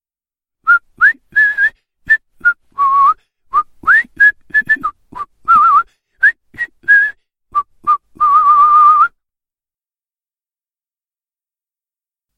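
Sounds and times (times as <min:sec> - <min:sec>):
person whistling a lively meandering tune: 0:00.6 - 0:09.2.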